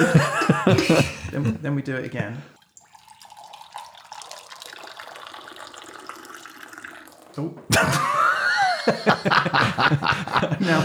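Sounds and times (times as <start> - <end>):
laughter: 0.0 - 2.4, 7.6 - 10.8
speech: 0.0 - 2.6, 7.4 - 8.2, 9.0 - 10.8
tea pouring from a raised teapot into a cup: 1.0 - 8.3.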